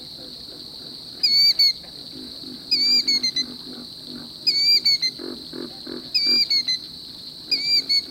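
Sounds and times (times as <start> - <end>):
constant high insect hum: 0.0 - 8.1
throbbing frog chorus: 0.0 - 8.1
alarmed killdeer giving shrill falling alarm notes in a southern marsh: 1.2 - 1.8, 2.7 - 3.4, 4.5 - 5.2, 6.1 - 6.8, 7.5 - 8.1.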